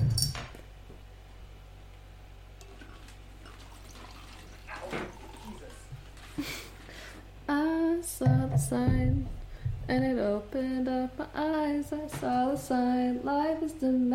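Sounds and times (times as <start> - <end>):
low hum: 0.0 - 14.1
wine pouring into a glass: 2.6 - 6.2
speech: 8.7 - 14.1.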